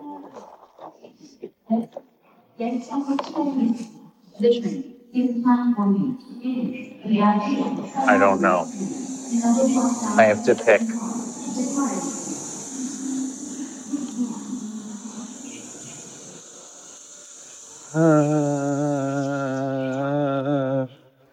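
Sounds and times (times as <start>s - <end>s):
speech: 1.7s - 2.0s, 2.6s - 11.1s, 18.0s - 18.5s
train waiting to depart idling with high-pitched whine and low rumble: 6.5s - 20.0s.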